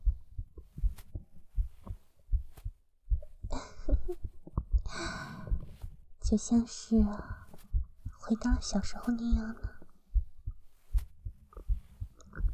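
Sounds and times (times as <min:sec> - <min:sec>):
human heartbeat: 0:00.0 - 0:12.5
soft breathing: 0:00.6 - 0:12.5
speech: 0:06.3 - 0:07.4, 0:08.3 - 0:09.7.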